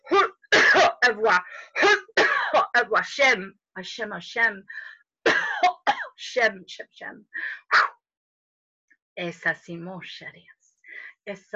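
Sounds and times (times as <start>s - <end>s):
harsh voiced coughs to release the throat: 0.2s - 1.0s, 1.8s - 2.8s, 5.3s - 6.2s
speech: 1.1s - 2.0s, 2.8s - 5.4s, 6.2s - 8.0s, 9.2s - 10.6s, 11.2s - 11.5s.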